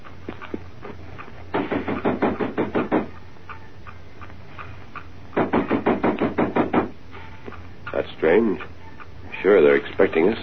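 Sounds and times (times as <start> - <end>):
knocking on the wooden side door of a house: 1.7 - 3.1, 5.4 - 7.0
speech: 8.2 - 8.8, 9.4 - 10.4.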